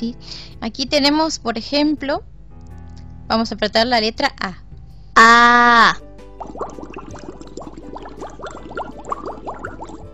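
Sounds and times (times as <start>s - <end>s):
speech: 0.0s - 2.4s, 3.3s - 4.6s, 5.2s - 6.0s
aquarium water bubbling: 6.3s - 10.1s.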